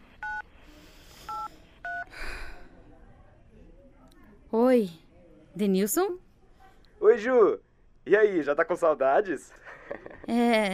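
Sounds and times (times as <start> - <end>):
phone keypad dialing tones: 0.2 - 0.4, 1.3 - 2.1
speech: 4.5 - 5.0, 5.6 - 6.2, 7.0 - 10.7.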